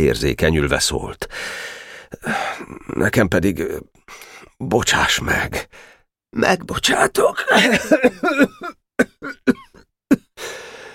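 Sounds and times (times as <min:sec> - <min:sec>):
speech: 0:00.0 - 0:09.6
breathy exhale: 0:01.3 - 0:02.6, 0:10.4 - 0:10.9
narrator performing a boy's fit of rough hacking coughs: 0:07.4 - 0:10.4.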